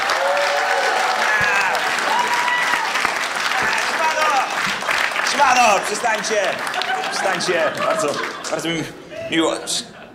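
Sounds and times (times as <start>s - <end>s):
audience whistles and cheers: 0.0s - 4.4s
large audience applauding: 0.0s - 8.7s
speech: 5.4s - 10.0s
laughter: 6.6s - 10.1s.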